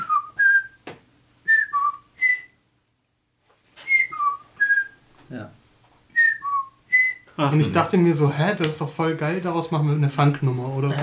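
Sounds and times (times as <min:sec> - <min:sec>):
person whistling a bird-like call: 0:00.0 - 0:00.8, 0:01.5 - 0:02.6, 0:03.8 - 0:05.0, 0:06.2 - 0:07.3
speech: 0:05.3 - 0:05.6, 0:07.4 - 0:11.0.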